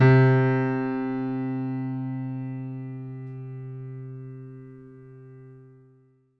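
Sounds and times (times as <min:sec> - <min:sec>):
acoustic piano: 0:00.0 - 0:05.9.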